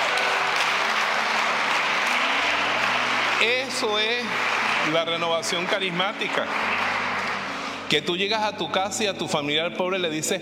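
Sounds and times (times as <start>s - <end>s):
audience applause for a woman: 0.0s - 8.4s
speech: 3.4s - 6.9s, 7.9s - 10.4s.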